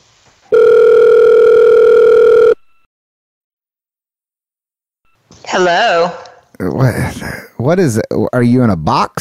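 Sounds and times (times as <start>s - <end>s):
loud steady electronic telephone ringback tone heard over the line: 0.5s - 2.7s
speech: 5.6s - 6.2s, 7.7s - 9.1s.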